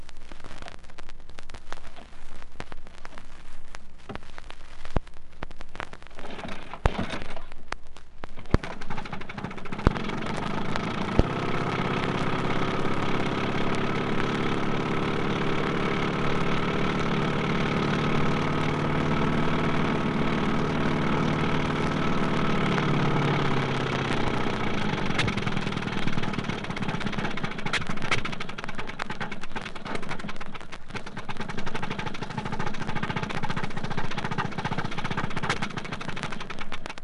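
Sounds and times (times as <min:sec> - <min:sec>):
twin-cylinder copper-jacketed engine starting and idling: 0:06.2 - 0:07.4, 0:08.5 - 0:36.8.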